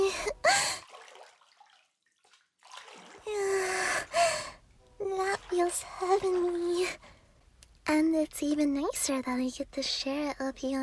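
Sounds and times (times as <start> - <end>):
water sloshing and splashing in a full bathtub: 0.0 - 7.1
speech: 8.0 - 10.8.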